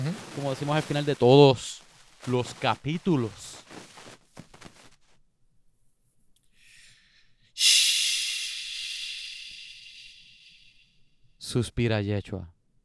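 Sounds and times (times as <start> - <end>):
speech: 0.4 - 3.9, 11.5 - 12.6
person shushing: 7.6 - 10.8.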